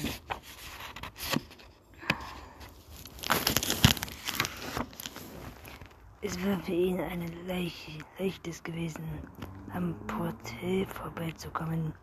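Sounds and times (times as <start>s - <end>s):
plastic bag crinkling and rustling in a hand: 2.8s - 6.1s
speech: 6.2s - 12.0s.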